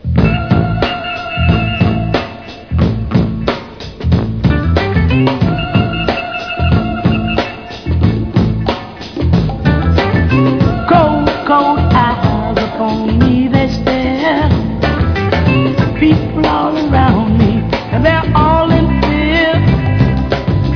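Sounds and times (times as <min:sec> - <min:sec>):
funk music: 0:00.0 - 0:20.7.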